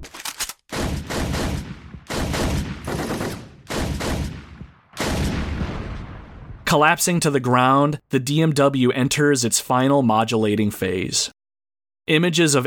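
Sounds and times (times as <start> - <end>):
heavy bursts of rapid gunfire from multiple guns: 0.2 - 5.6
speech: 6.7 - 11.3, 12.1 - 12.6.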